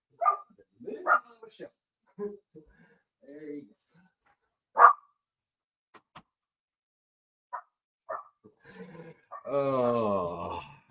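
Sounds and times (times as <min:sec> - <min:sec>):
dog barking: 0:00.2 - 0:01.3, 0:04.8 - 0:05.1, 0:07.6 - 0:08.4
speech: 0:01.5 - 0:02.7, 0:09.5 - 0:10.2.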